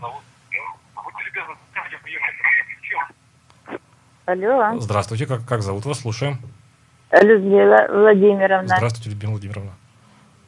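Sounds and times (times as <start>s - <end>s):
speech: 0.0s - 0.3s, 4.3s - 9.7s
caller's radio broadcast over phone line: 0.0s - 3.1s
voice over a thin band-limited phone line: 0.0s - 3.1s.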